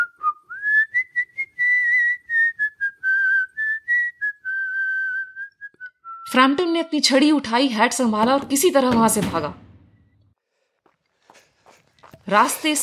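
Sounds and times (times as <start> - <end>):
person whistling a wavering sliding melody: 0.0 - 6.3
speech: 6.4 - 9.6, 12.3 - 12.8.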